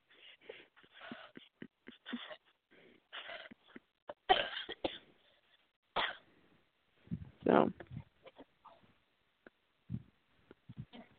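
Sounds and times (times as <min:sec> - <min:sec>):
coughing: 0:01.0 - 0:05.1, 0:06.0 - 0:06.2.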